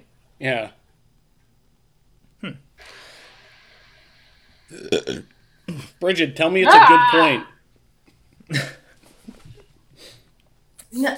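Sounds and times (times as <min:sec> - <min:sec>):
speech: 0:00.4 - 0:00.8, 0:04.7 - 0:05.3, 0:06.0 - 0:07.5, 0:08.5 - 0:08.8, 0:10.9 - 0:11.1
soft breathy noise: 0:02.8 - 0:06.0
short loud burp: 0:04.7 - 0:05.3, 0:06.6 - 0:07.5.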